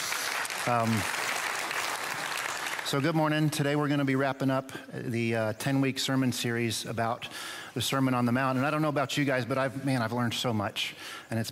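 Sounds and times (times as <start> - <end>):
church congregation clapping: 0.0 - 3.7
speech: 0.7 - 1.2, 2.9 - 11.5.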